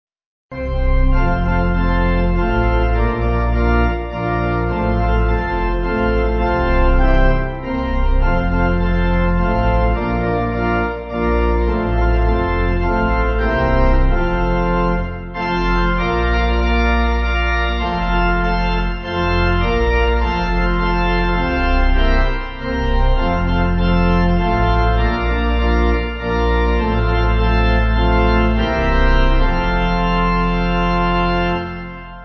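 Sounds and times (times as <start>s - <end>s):
pipe organ: 0.5s - 32.2s.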